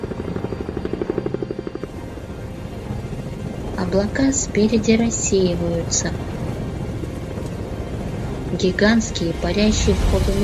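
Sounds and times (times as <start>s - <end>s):
helicopter rotor chopping in thick fog: 0.0s - 10.4s
speech: 3.8s - 6.4s, 8.6s - 10.4s.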